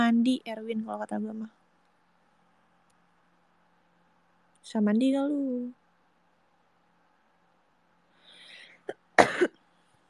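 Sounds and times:
speech: 0.0 - 1.6, 4.7 - 5.8
person coughing: 8.8 - 9.6.

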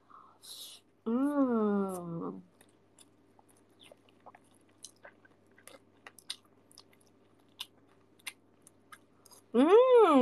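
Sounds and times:
person talking: 0.6 - 2.5, 9.5 - 10.2
close wet chewing of food including anchovies: 2.5 - 9.5.

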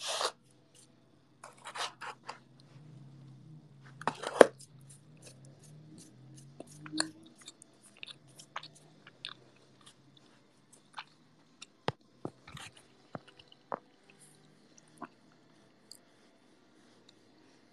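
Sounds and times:
chewing food with crisp crunches: 2.5 - 16.0.

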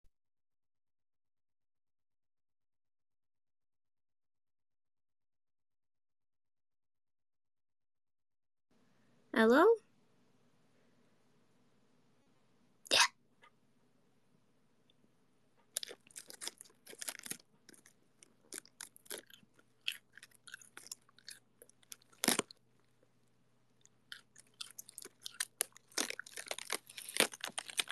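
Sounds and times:
speech: 9.3 - 9.9
person chewing a cold crispy head of lettuce: 15.7 - 23.1, 23.8 - 27.9.

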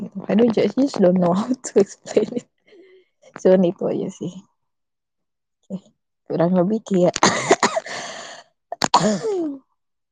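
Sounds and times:
speech: 0.3 - 2.5, 3.4 - 4.5, 5.7 - 7.5, 9.0 - 9.6
raspy hoarse throaty coughing fit: 7.2 - 8.0, 8.8 - 9.6.

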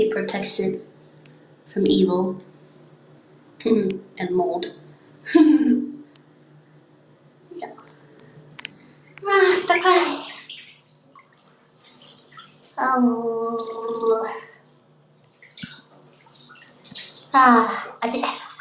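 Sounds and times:
speech: 0.0 - 1.0, 1.7 - 2.5, 3.6 - 6.0, 9.2 - 10.4, 12.8 - 14.5, 17.3 - 18.4
hot water running into a bathtub: 9.2 - 14.5, 15.3 - 18.5.

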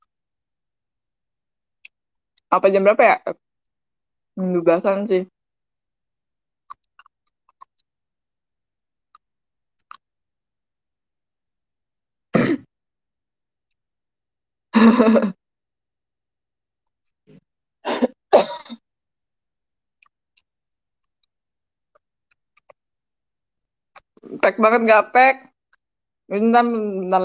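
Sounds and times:
speech: 2.5 - 3.4, 4.4 - 5.3, 15.0 - 15.4, 24.5 - 25.5, 26.3 - 27.2
person coughing after overeating chicken: 12.4 - 12.7, 14.8 - 15.4, 17.8 - 18.8.

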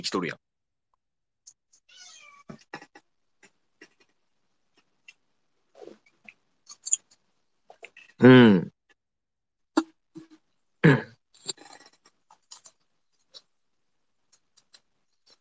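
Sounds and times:
speech: 0.0 - 0.4, 8.2 - 8.7, 10.8 - 11.1
cat meowing: 1.9 - 2.5.

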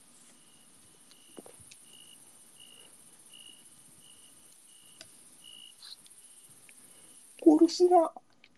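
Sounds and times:
baby cricket chirping: 0.0 - 8.4
thin insect hiss: 0.0 - 8.5
speech: 7.6 - 8.2.

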